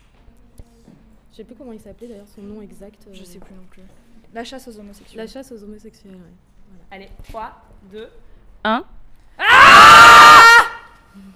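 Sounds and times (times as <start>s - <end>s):
speech: 1.4s - 9.0s, 11.2s - 11.3s
human scream of anger and rage tinged with sadness: 9.4s - 10.9s.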